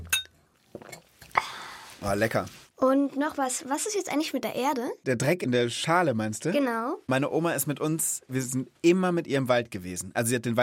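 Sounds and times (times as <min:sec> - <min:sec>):
glasses clinking in a toast: 0:00.0 - 0:01.1
speech: 0:02.0 - 0:10.6.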